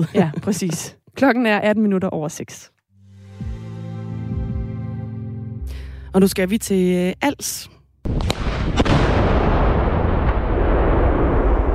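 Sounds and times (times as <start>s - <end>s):
speech: 0.0s - 2.8s, 6.1s - 8.8s
World War II bomb detonated by military ammunition clearance in Denmark: 8.1s - 11.7s.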